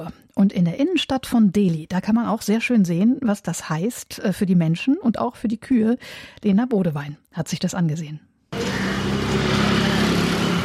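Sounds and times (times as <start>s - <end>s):
speech: 0.1s - 8.6s
broadband road noise: 8.6s - 10.6s
street traffic engine drone in a side street of central Delhi: 8.6s - 10.6s.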